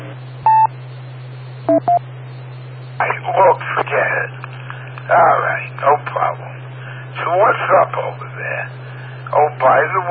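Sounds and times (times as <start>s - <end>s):
low electrical hum: 0.0s - 10.0s
telephone keypad DTMF dialing tones: 1.7s - 2.0s.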